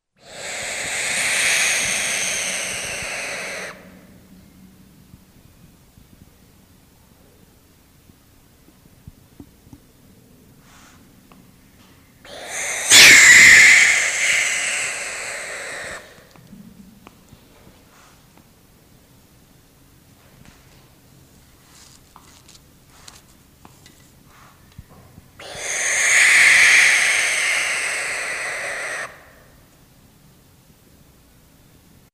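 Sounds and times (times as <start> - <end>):
barn owl: 0.0 - 4.2, 12.2 - 16.6, 25.4 - 29.6.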